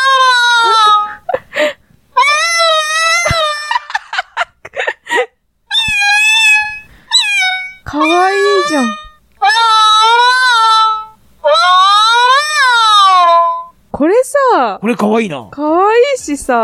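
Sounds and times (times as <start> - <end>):
Otamatone imitating angry cat yowls: 0.0 - 1.3, 2.2 - 4.0, 5.7 - 13.8
breathy noises: 0.3 - 2.0, 4.7 - 11.2
speech: 14.8 - 16.6.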